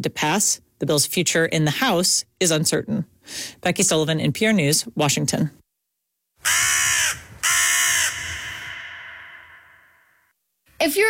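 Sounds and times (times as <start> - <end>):
speech: 0.0 - 5.6, 10.8 - 11.0
crow cawing: 6.4 - 10.3.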